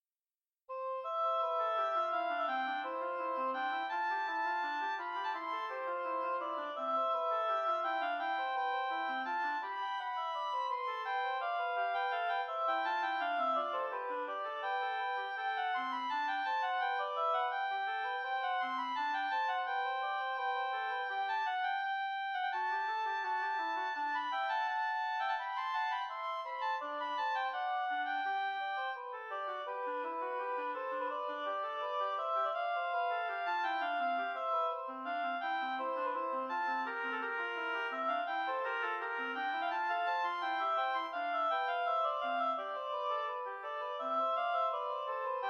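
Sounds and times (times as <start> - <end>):
two oboes playing an air in C major: 0.7 - 45.4.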